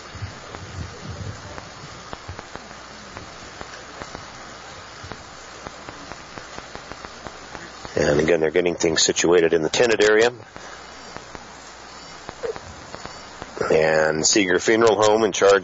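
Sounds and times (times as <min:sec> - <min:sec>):
strong wind at an outdoor cemetery on a sunny day: 0:00.0 - 0:02.5
sharp crackles and ticks: 0:00.0 - 0:15.6
speech: 0:08.0 - 0:10.7, 0:13.8 - 0:15.6.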